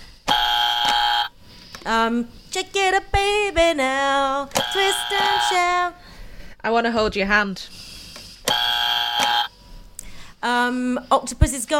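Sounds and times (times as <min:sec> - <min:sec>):
quiet noise: 0:00.0 - 0:11.7
loud quiz-show buzzer: 0:00.3 - 0:01.3, 0:04.6 - 0:05.7, 0:08.5 - 0:09.5
speech: 0:01.8 - 0:06.0, 0:06.6 - 0:07.8, 0:10.4 - 0:11.7.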